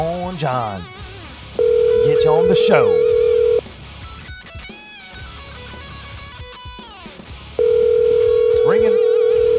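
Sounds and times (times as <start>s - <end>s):
speech: 0.0s - 1.1s, 2.0s - 3.1s
loud steady electronic telephone tone on the line: 1.6s - 3.6s, 7.6s - 9.5s.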